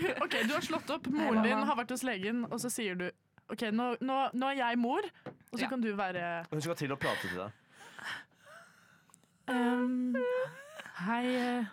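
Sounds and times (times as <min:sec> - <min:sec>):
speech: 0:00.0 - 0:08.3, 0:09.5 - 0:11.7
person sobbing: 0:09.5 - 0:11.6.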